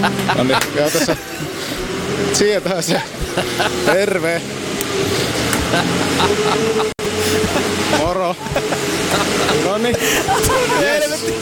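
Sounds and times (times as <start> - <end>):
laughter: 0.0 - 2.0, 2.7 - 4.4, 5.3 - 11.4
speech: 0.0 - 7.0, 9.8 - 11.4
tractor engine driving past: 0.0 - 11.4.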